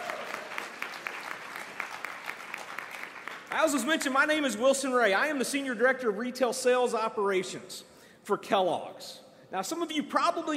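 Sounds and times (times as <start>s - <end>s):
audience applause for award winners: 0.0s - 3.8s
speech: 3.5s - 10.5s.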